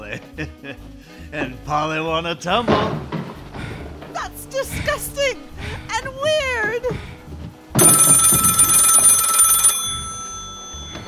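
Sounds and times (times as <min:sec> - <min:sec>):
speech: 0:00.1 - 0:03.1, 0:04.6 - 0:07.1
loud telephone bell ringing with a bright metallic trill: 0:07.8 - 0:11.0.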